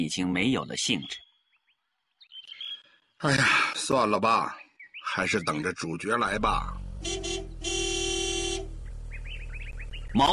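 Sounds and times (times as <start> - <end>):
speech: 0.0 - 1.3, 3.2 - 7.4, 10.1 - 10.3
jeep horn honking: 6.8 - 10.0.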